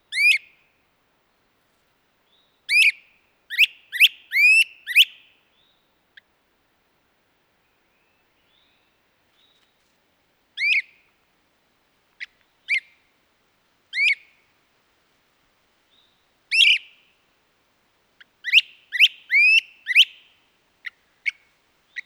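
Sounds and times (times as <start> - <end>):
great crested flycatcher calls: 0.1 - 0.4, 2.7 - 5.2, 18.4 - 20.3.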